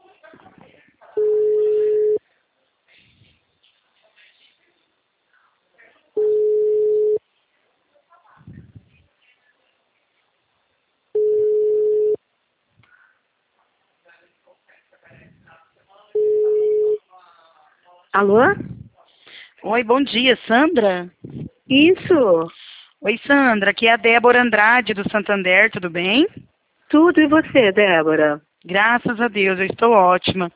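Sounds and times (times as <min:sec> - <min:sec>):
telephone ringback tone on an outgoing call: 0:01.2 - 0:02.2, 0:06.2 - 0:07.2, 0:11.2 - 0:12.2, 0:16.2 - 0:17.0
speech: 0:18.2 - 0:18.7, 0:19.6 - 0:30.5.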